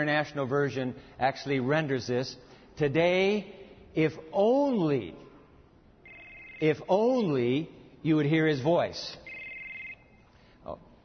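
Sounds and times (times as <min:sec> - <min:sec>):
speech: 0:00.0 - 0:05.3, 0:06.6 - 0:09.2, 0:10.6 - 0:10.8
low noise: 0:00.0 - 0:11.0
mobile phone ringing with an incoming call: 0:06.0 - 0:07.0, 0:09.2 - 0:10.3.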